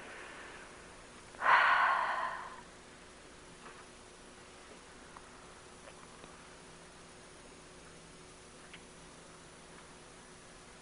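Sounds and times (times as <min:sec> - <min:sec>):
slow relaxed breath during a guided meditation: 0:00.0 - 0:02.7.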